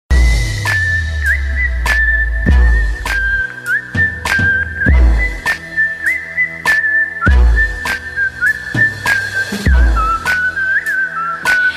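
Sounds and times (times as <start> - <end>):
whistling synth bass: 0.1 - 11.7.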